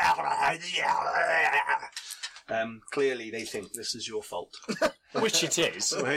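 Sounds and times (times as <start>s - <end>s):
voice imitating snarling hobgoblins with a gravelly growl: 0.0s - 1.9s
speech: 0.5s - 6.1s.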